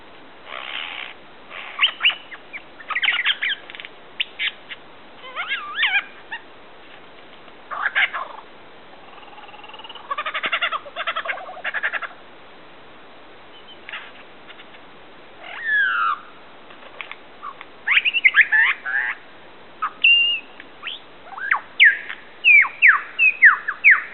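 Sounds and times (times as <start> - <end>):
frogs in the Alps calling with pulsing croaks: 0.4 - 6.5, 7.7 - 12.2, 17.4 - 24.1
superb lyrebird mimicking other birds' songs: 0.5 - 6.5, 7.7 - 12.2, 15.4 - 16.3, 17.4 - 19.2, 19.8 - 24.1.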